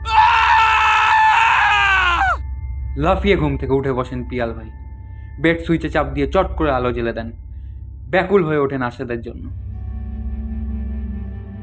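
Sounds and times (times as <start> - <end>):
man screaming: 0.0 - 2.4
speech: 3.0 - 4.8, 5.4 - 7.4, 8.1 - 9.6.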